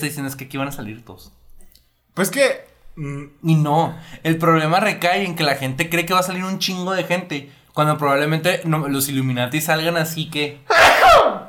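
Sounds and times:
speech: 0.0s - 1.4s, 2.2s - 11.4s
sneeze: 10.7s - 11.4s.

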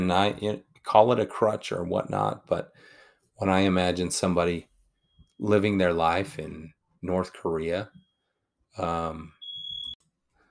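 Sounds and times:
speech: 0.0s - 4.7s, 5.4s - 8.0s, 8.8s - 9.4s
smoke alarm beep in a house set off by baking: 5.0s - 5.4s, 7.9s - 8.4s, 9.3s - 10.0s.

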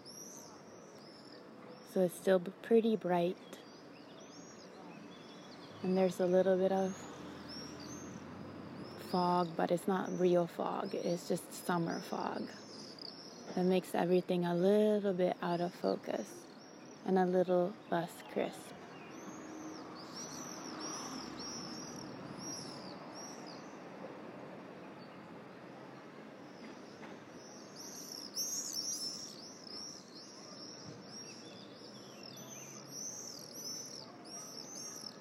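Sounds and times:
dense chorus of sparrows chirping: 0.0s - 23.9s, 24.8s - 35.2s
soft outdoor ambience: 0.0s - 35.2s
speech: 2.0s - 3.6s, 5.8s - 7.1s, 9.1s - 12.6s, 13.5s - 16.4s, 17.0s - 18.8s.

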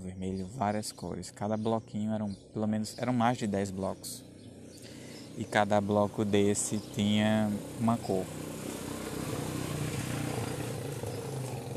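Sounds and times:
speech: 0.2s - 4.3s, 5.4s - 8.5s
motorcycle engine droning outside: 2.4s - 11.7s.

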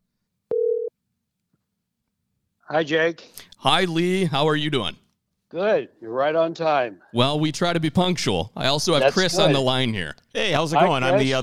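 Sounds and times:
telephone ringing tone beep: 0.5s - 0.9s
speech: 2.7s - 11.4s.

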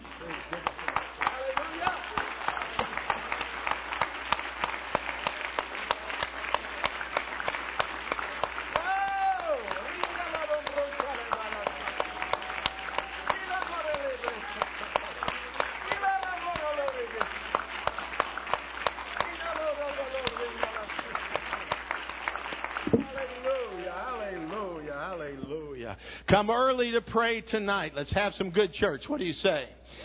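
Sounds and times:
church audience clapping hands rhythmically: 0.0s - 25.5s
speech: 26.3s - 29.8s.

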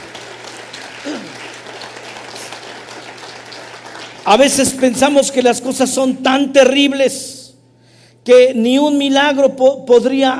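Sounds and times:
large crowd applauding: 0.0s - 4.8s
person shouting: 1.1s - 1.4s
speech: 4.3s - 7.3s, 8.2s - 10.3s.

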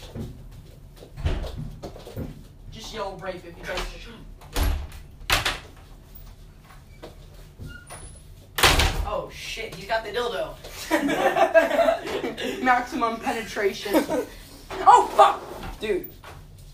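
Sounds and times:
speech: 3.0s - 4.3s, 9.6s - 11.7s, 12.6s - 16.2s
house door pushed shut with solid thumps and knocks: 8.6s - 9.1s
laughter: 10.7s - 12.8s.

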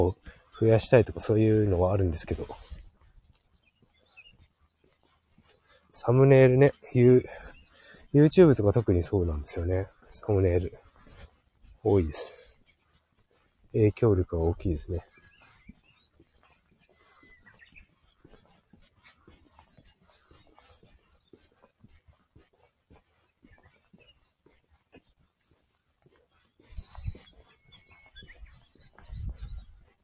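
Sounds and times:
speech: 0.0s - 2.7s, 6.0s - 7.4s, 8.1s - 10.8s, 11.8s - 12.4s, 13.7s - 15.1s
faint Japanese bush warblers singing: 0.0s - 30.0s.

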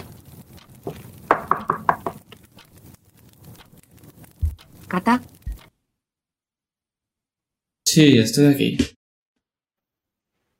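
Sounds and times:
knocking on a closed bedroom door in a house: 1.3s - 2.2s
speech: 4.9s - 5.3s, 8.0s - 9.0s.

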